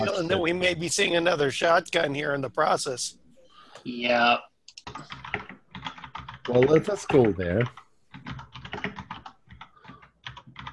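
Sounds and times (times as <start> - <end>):
speech: 0.1 - 3.2, 3.8 - 5.2, 6.4 - 8.4
loud computer keyboard typing: 4.7 - 10.7.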